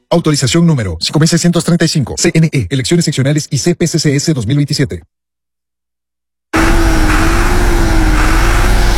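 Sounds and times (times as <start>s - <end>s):
speech: 0.1s - 5.2s
working tractor engine running: 6.5s - 8.9s.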